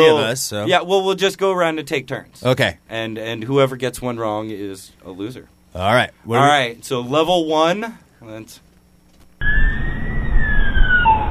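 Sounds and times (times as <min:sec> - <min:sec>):
speech: 0:00.0 - 0:08.7
police siren wailing: 0:09.4 - 0:11.2.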